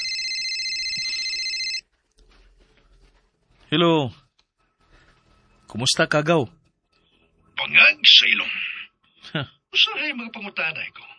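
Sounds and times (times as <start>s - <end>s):
electronic ringback tone of an outgoing call to a cellphone: 0.0s - 1.8s
speech: 3.7s - 4.2s, 5.7s - 6.6s, 7.7s - 8.7s, 9.3s - 11.1s.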